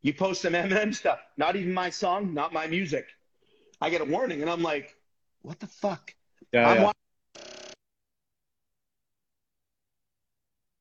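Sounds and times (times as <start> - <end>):
speech: 0.0 - 3.2, 3.8 - 7.5
telephone ringing in two short tonal bursts: 6.8 - 7.8.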